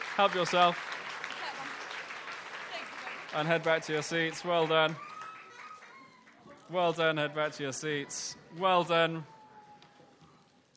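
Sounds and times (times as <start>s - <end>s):
audience applause: 0.0s - 7.3s
speech: 0.2s - 0.9s, 3.3s - 5.1s, 6.7s - 9.3s.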